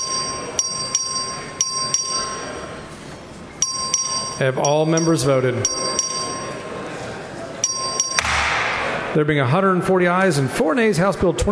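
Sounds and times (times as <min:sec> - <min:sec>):
electric voting bell ringing in a large legislative chamber: 0:00.0 - 0:02.8, 0:03.6 - 0:06.7, 0:07.6 - 0:08.2
speech: 0:04.4 - 0:05.8, 0:09.2 - 0:11.4.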